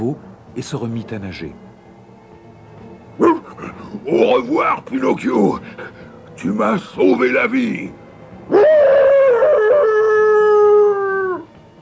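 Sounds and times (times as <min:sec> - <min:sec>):
speech: 0:00.0 - 0:01.7, 0:03.2 - 0:08.6
dog howling: 0:08.5 - 0:11.6.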